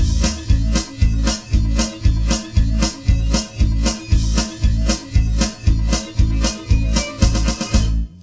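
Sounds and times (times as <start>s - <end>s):
separated percussive sounds: 0.0s - 8.0s.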